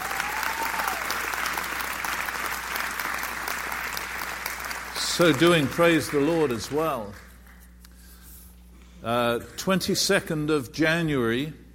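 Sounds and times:
audience applause at a prayer gathering: 0.0 - 7.7
speech: 5.2 - 7.2, 9.0 - 11.6.

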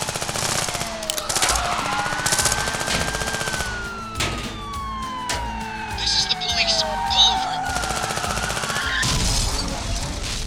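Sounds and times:
police siren wailing: 0.0 - 10.2
crashing impacts: 0.0 - 10.4
machine gun fire at police car: 0.0 - 10.4.

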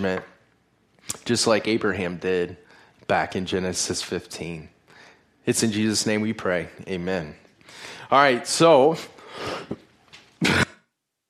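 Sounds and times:
speech: 0.0 - 0.3, 1.0 - 4.8, 5.5 - 10.6
person coughing from a lingering tickle in the throat during a church service: 10.4 - 10.9
throat clearing from a tickle in the throat: 10.4 - 10.9.

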